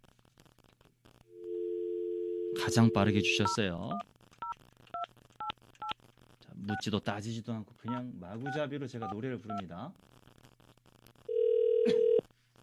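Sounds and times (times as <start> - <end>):
telephone ringback tone: 1.4 - 3.6, 11.3 - 12.2
speech: 2.6 - 4.2, 6.7 - 10.1.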